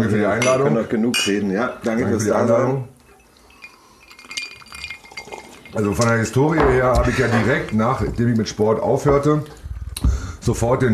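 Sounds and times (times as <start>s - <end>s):
speech: 0.0s - 2.9s, 5.7s - 10.9s
glasses clinking together in a toast: 0.1s - 8.4s.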